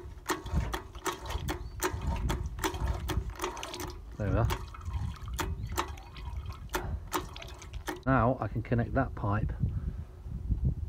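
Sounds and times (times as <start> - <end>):
hand water pump squirting through a valve: 0.0 - 8.1
speech: 4.2 - 4.6, 8.0 - 9.7.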